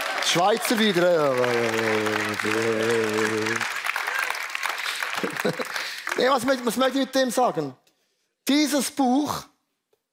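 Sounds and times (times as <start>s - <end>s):
audience clapping: 0.0s - 7.4s
speech: 0.3s - 3.8s, 5.2s - 7.8s, 8.5s - 9.5s
laughter: 1.6s - 6.2s.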